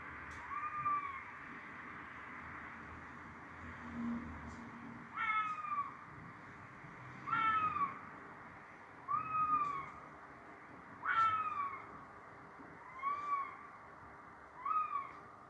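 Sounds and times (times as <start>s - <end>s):
red fox calling at night over wintry farmland: 0.4s - 1.2s, 5.1s - 6.0s, 7.2s - 8.0s, 9.0s - 10.1s, 11.0s - 12.0s, 12.8s - 13.8s, 14.6s - 15.3s.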